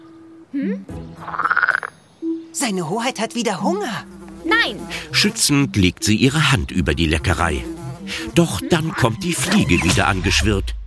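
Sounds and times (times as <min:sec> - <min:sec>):
speech: 0:00.5 - 0:01.6, 0:02.6 - 0:10.8
frog croaking: 0:00.8 - 0:02.1.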